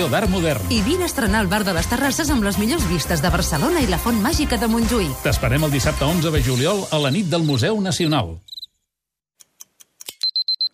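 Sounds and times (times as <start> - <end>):
speech: 0.0 - 8.5
alarm clock beeping: 10.2 - 10.7.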